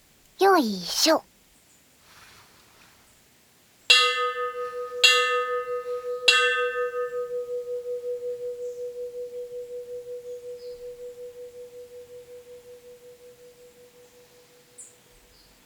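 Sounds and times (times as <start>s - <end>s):
speech: 0.4s - 1.3s
temple bell struck: 3.9s - 7.6s.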